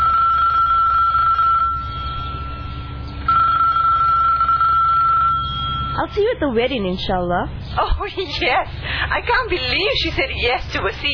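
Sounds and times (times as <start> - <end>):
telephone ringing with a steady electronic tone: 0.0 - 6.2
speech: 6.1 - 11.1.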